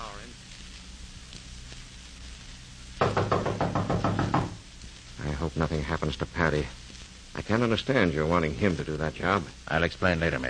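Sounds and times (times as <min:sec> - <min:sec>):
firm knocks on a wooden door: 0:03.0 - 0:04.6
speech: 0:05.5 - 0:06.8, 0:07.4 - 0:10.4.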